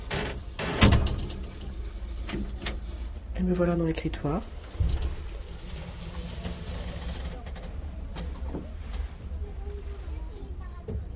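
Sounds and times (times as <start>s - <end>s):
faint rustling: 0.0s - 11.1s
writing booth door shutting with a magnetic catch: 0.2s - 1.4s
speech: 3.4s - 4.6s.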